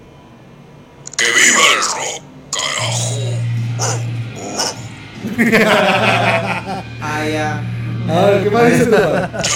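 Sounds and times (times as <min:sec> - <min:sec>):
steady low hum: 0:00.0 - 0:09.5
dog growling: 0:01.2 - 0:04.9
laughter: 0:05.2 - 0:07.0, 0:08.6 - 0:09.5
speech: 0:05.4 - 0:06.6, 0:07.2 - 0:09.5.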